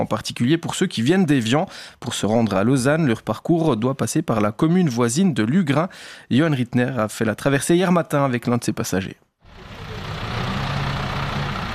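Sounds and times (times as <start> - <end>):
speech: 0.0 - 9.8
shuttle bus engine idling at a lake landing stage in Lugrin: 9.5 - 11.7.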